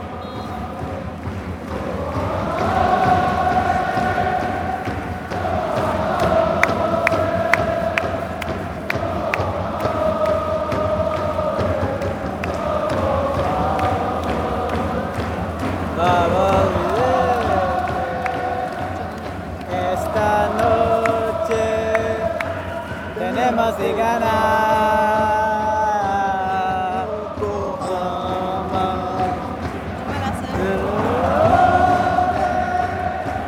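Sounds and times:
massive soccer stadium crowd of fans chanting in unison: 0.0 - 33.4
soccer fans clapping: 0.0 - 33.4
whistles in a soccer stadium crowd: 0.1 - 0.7.

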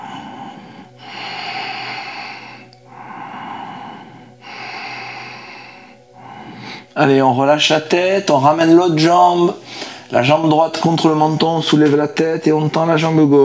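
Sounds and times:
deep nasal breathing during an abdominal yoga exercise: 0.0 - 7.0, 9.5 - 10.2
speech: 7.0 - 13.4.

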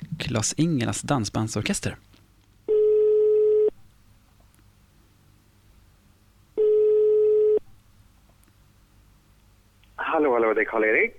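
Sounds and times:
speech: 0.3 - 2.1, 10.7 - 11.1
telephone ringback tone on a call to a farm in Dalsland Sweden: 2.7 - 3.7, 6.6 - 7.6.

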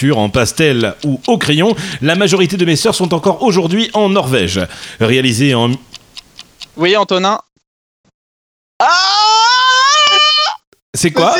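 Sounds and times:
laughter: 0.0 - 5.9
speech: 0.0 - 5.9, 6.8 - 7.5, 10.9 - 11.3
person imitating a scream: 8.8 - 10.6.

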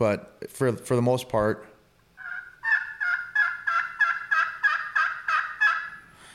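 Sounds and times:
speech: 0.0 - 1.7
friction pot turkey call playing a basic yelp: 2.2 - 6.1.

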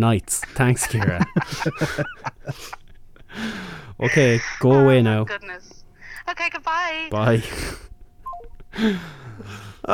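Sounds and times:
speech: 0.0 - 7.9, 8.7 - 9.9
laughter: 0.4 - 2.9
descending electronic phone tones ending a call: 8.2 - 8.6.

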